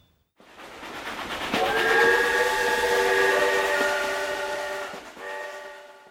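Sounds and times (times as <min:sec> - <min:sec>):
train rumbling on rails: 0:00.4 - 0:06.0
steam whistle blaring: 0:01.6 - 0:06.0.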